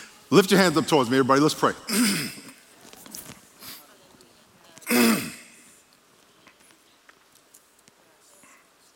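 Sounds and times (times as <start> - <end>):
speech: 0.3 - 2.4
preacher coughing during a sermon: 1.9 - 2.6, 4.9 - 5.6.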